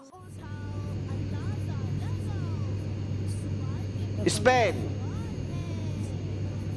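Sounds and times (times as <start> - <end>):
airplane engine droning: 0.0 - 6.7
faint wavering tones: 0.1 - 6.7
speech: 4.2 - 4.9.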